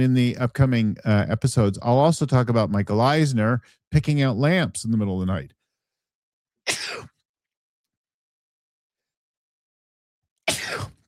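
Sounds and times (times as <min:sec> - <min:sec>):
speech: 0:00.0 - 0:05.6
person sneezing: 0:06.7 - 0:07.1, 0:10.5 - 0:11.0.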